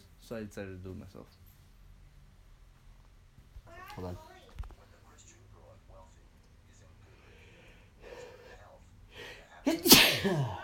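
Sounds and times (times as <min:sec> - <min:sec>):
speech: 0:00.3 - 0:01.4, 0:04.0 - 0:04.3, 0:10.2 - 0:10.6
person sneezing: 0:09.7 - 0:10.6.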